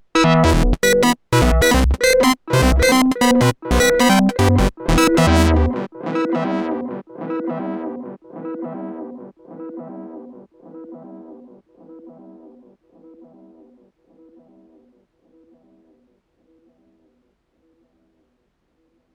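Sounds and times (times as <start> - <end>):
Bass Station 2 synthesizer through Echo Fix EF X3 echo: 0.2 - 15.9.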